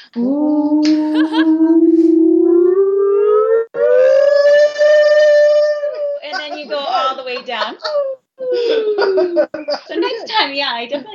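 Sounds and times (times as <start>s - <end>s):
speech: 0.1s - 0.7s
voice imitating a tsunami siren: 0.2s - 6.3s
laughter: 5.8s - 11.1s.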